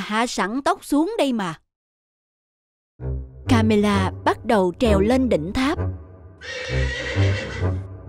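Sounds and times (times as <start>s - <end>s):
speech: 0.1s - 1.6s, 3.0s - 7.8s
horse whinnying loudly: 6.4s - 7.8s.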